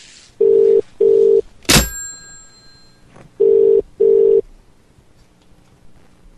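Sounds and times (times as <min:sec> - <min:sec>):
telephone tones after a call is hung up: 0:00.4 - 0:02.1, 0:03.4 - 0:04.4
sharp clunk: 0:01.7 - 0:02.8.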